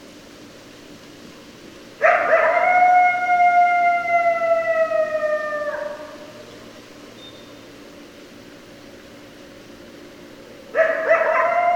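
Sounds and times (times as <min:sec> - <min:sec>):
several coyotes howling: 0:02.0 - 0:06.4, 0:10.7 - 0:11.7.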